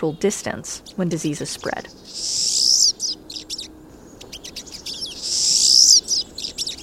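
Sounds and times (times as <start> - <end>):
speech: 0.0 - 3.0
pine siskins calling with buzzy wheezes and twittering chips: 1.9 - 6.8.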